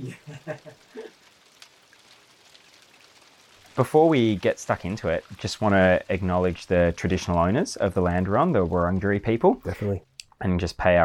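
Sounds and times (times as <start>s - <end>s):
rain pattering on a roof overhead: 0.0s - 9.9s
speech: 3.8s - 11.0s.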